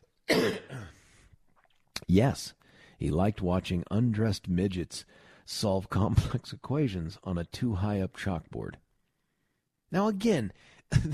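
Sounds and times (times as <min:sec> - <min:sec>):
person coughing: 0:00.3 - 0:01.0
speech: 0:02.1 - 0:08.8, 0:09.9 - 0:11.1.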